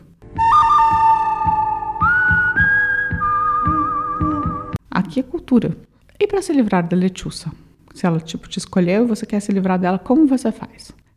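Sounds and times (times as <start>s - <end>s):
long shrill human whistle: 0.4s - 4.8s
steady pulsing low thump: 0.4s - 4.8s
speech: 5.2s - 11.0s.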